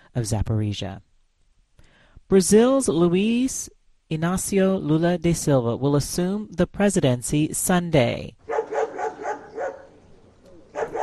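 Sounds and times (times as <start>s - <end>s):
speech: 0.2s - 1.1s, 2.3s - 8.4s
police sniffer dogs barking during vehicle searches outside a stadium in Brasília: 8.5s - 11.0s.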